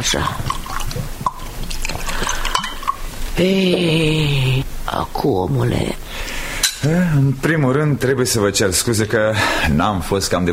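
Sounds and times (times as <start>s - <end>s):
speech: 0.0s - 1.1s, 3.4s - 6.0s, 6.8s - 10.5s
liquid pouring into glasses: 0.0s - 3.4s
bright clinks of glass: 2.1s - 3.1s.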